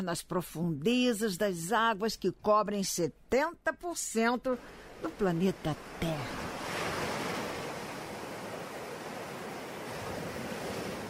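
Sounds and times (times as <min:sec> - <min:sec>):
speech: 0:00.0 - 0:06.5
ocean surf washing onto the shore: 0:04.6 - 0:11.0.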